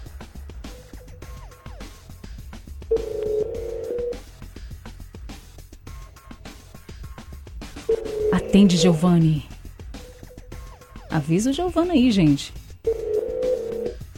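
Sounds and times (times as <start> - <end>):
busy rhythmic bed: 0.0 - 14.1
telephone tone from a call placed during an on-air radio phone-in: 2.9 - 4.2, 7.9 - 9.4, 12.8 - 14.0
speech: 8.5 - 9.5, 11.2 - 12.6.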